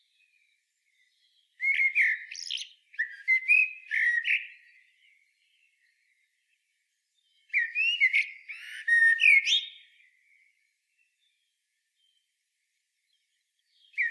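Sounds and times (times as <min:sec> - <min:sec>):
common blackbird Turdus merula singing: 0:00.1 - 0:06.3, 0:07.2 - 0:10.5, 0:13.6 - 0:14.1.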